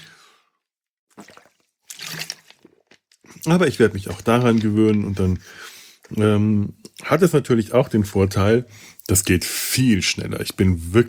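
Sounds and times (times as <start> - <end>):
person sipping and swallowing water: 1.1 - 7.0
speech: 3.4 - 11.0.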